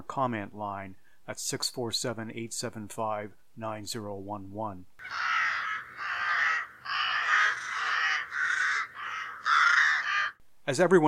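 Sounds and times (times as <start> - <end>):
speech: 0.1 - 5.3, 10.7 - 11.0
crows cawing: 5.0 - 10.4.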